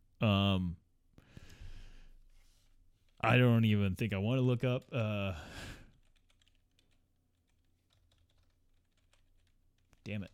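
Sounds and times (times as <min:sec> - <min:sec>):
speech: 0:00.2 - 0:00.8, 0:03.2 - 0:05.8, 0:10.1 - 0:10.3
typing on a computer keyboard: 0:04.6 - 0:10.3.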